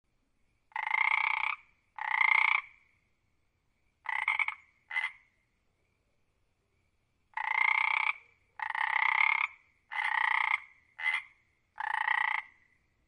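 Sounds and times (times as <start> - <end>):
frog croaking with buzzy trilling calls: 0.7 - 3.1, 4.0 - 5.4, 7.3 - 12.9.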